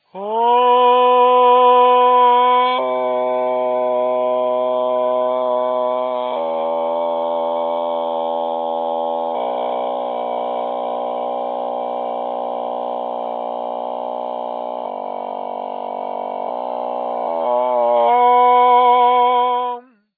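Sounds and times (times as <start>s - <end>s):
vocal fry subharmonics: 0.0s - 20.1s.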